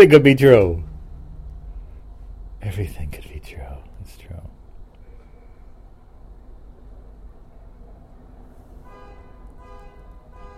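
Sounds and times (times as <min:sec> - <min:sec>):
speech: 0:00.0 - 0:00.9, 0:02.6 - 0:03.6
rumbling engine and road noise: 0:00.0 - 0:10.5
car horn honking: 0:08.8 - 0:10.5.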